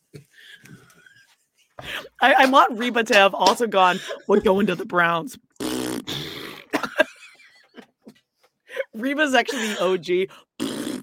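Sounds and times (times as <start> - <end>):
speech: 1.9 - 5.5, 9.0 - 10.5
short breathy bursts like stifled laughter: 3.7 - 4.9, 6.4 - 10.0
person blowing raspberry imitating a fart: 5.5 - 6.8, 10.5 - 11.0.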